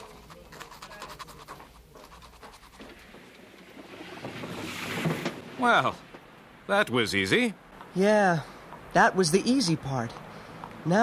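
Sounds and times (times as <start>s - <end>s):
pen scratching across paper writing a letter: 0.0s - 3.3s
speech: 5.6s - 6.1s, 6.7s - 10.2s, 10.8s - 11.0s.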